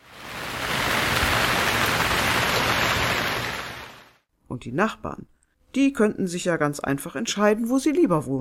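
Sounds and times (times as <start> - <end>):
steady rain shower: 0.0 - 4.2
speech: 4.6 - 8.3.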